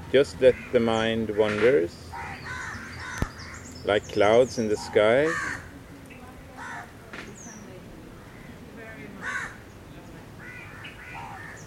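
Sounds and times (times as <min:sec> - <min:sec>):
outdoor hiss: 0:00.0 - 0:11.6
speech: 0:00.1 - 0:02.3, 0:03.8 - 0:05.5
higher bird call: 0:00.5 - 0:05.7, 0:09.2 - 0:09.7, 0:10.4 - 0:11.6
crow cawing: 0:02.1 - 0:03.7, 0:04.7 - 0:05.7, 0:06.6 - 0:07.0, 0:08.2 - 0:08.6, 0:09.2 - 0:09.6, 0:10.4 - 0:11.6.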